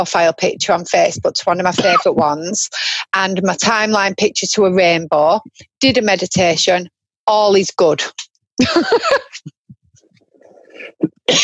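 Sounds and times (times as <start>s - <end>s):
speech: 0.0s - 9.6s, 10.8s - 11.4s
harsh coughing: 1.8s - 2.2s, 10.6s - 11.4s
faint throat noises and breaths: 9.4s - 11.4s.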